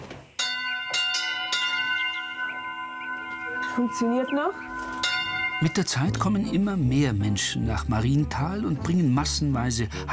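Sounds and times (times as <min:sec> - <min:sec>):
church bell ringing in a village bell tower: 0:00.4 - 0:07.8
speech: 0:03.8 - 0:04.8, 0:05.6 - 0:10.1.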